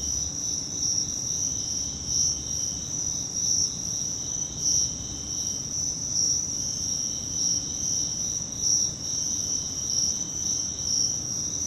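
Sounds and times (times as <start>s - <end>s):
cricket trilling in Virginia: 0.0s - 11.6s.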